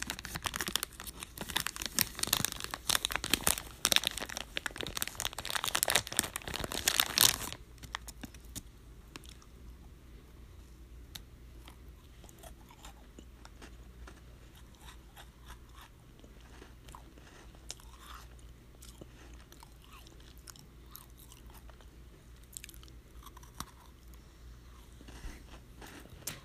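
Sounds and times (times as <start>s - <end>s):
packet being opened and crinkling: 0.0s - 9.4s
soft biscuit chewing with crunches: 0.0s - 9.7s, 11.0s - 26.4s.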